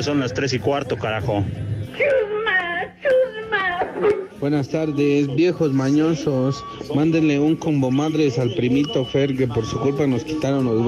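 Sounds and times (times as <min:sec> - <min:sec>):
speech: 0:00.0 - 0:02.2, 0:04.0 - 0:10.8
whimpering cry sound effect: 0:01.9 - 0:04.4.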